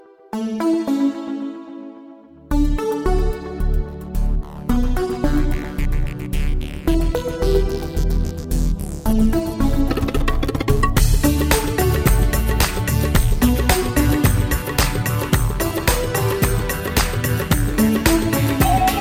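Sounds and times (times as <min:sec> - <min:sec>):
techno music: 0:00.1 - 0:18.9
tabla: 0:10.1 - 0:18.9.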